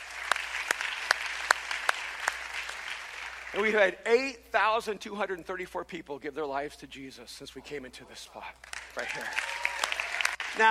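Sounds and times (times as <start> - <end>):
church audience applauding: 0.0 - 3.8, 8.6 - 10.6
speech: 3.5 - 9.6.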